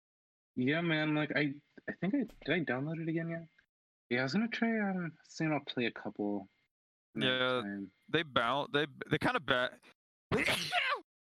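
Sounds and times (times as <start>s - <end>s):
speech: 0.6s - 10.9s
person sneezing: 10.3s - 11.0s.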